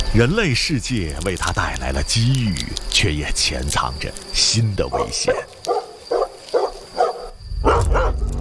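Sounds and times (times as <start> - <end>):
speech: 0.2 - 5.5
domestic dog barking: 4.9 - 8.3.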